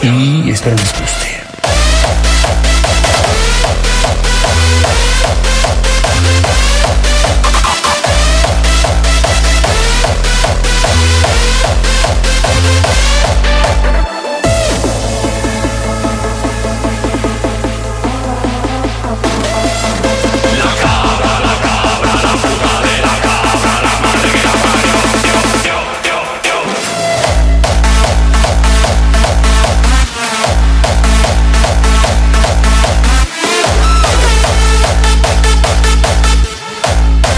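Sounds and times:
speech: 0.0s - 1.2s
1990s full-band dance track: 0.0s - 37.3s.

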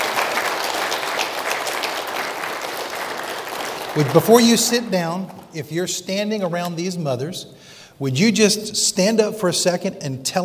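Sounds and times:
large crowd applauding honoring mothers: 0.0s - 5.6s
speech: 4.0s - 10.4s.

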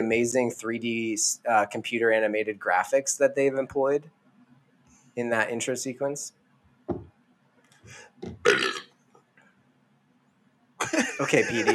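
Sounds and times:
speech: 0.0s - 4.2s, 5.2s - 7.0s, 11.2s - 11.7s
person burping: 8.2s - 8.8s
laughter: 10.8s - 11.7s.

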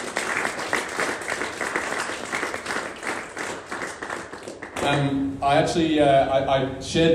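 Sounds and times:
audience applauding: 0.0s - 4.9s
speech: 4.9s - 7.1s.

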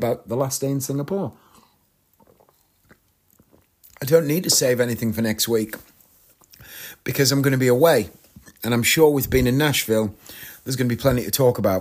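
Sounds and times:
speech: 0.0s - 1.6s, 4.0s - 5.9s, 6.6s - 11.7s
sip from a drink with wet mouth clicks and a swallow: 1.4s - 4.6s.

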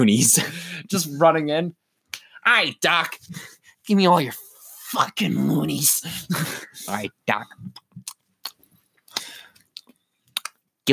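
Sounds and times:
speech: 0.0s - 1.8s, 2.4s - 7.8s
voice imitating chewing on a gun: 7.6s - 8.6s.

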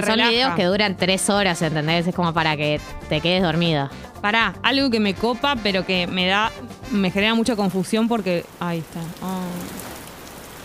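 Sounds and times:
speech: 0.0s - 9.8s
steady rain falling: 6.9s - 10.6s.

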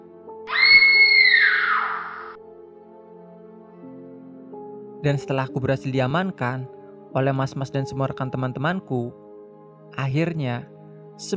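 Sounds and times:
woman screaming in fear while running into a forest: 0.5s - 2.4s
speech: 5.0s - 9.2s, 9.9s - 11.3s.

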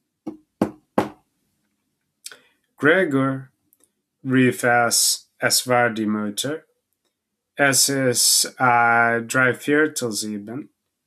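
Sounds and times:
soft knocking on a bedroom door at the head of a bed: 0.3s - 1.2s
speech: 2.8s - 3.5s, 4.2s - 6.7s, 7.6s - 10.7s.

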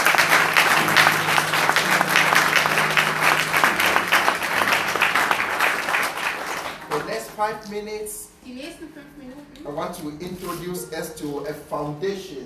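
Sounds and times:
audience clapping at the end of a sermon: 0.0s - 7.8s
speech: 7.4s - 12.4s.

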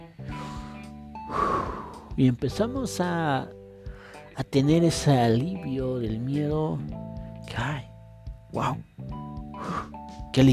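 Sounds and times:
deep breath in and out: 0.3s - 2.2s, 3.7s - 4.3s, 9.6s - 10.2s
speech: 2.2s - 3.6s, 4.4s - 7.9s, 8.5s - 9.2s, 10.4s - 10.5s.

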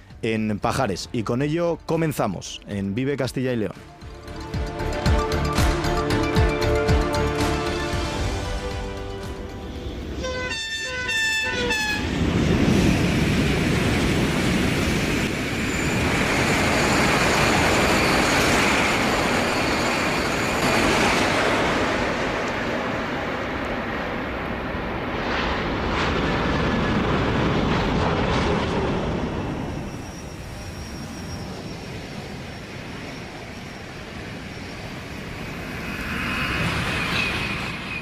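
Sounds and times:
speech: 0.2s - 4.0s
high-speed train passing: 3.6s - 38.0s.

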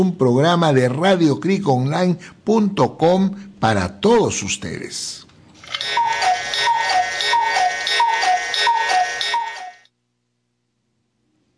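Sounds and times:
speech: 0.0s - 6.1s
cuckoo clock two-note descending call with bright mechanical ring: 5.6s - 9.9s.

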